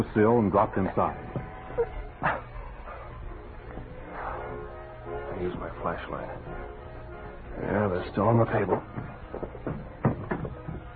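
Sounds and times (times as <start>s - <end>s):
speech: 0.0s - 2.4s, 5.4s - 6.8s, 7.6s - 9.8s
person bumping into a chair in a darkened living room: 8.7s - 10.9s.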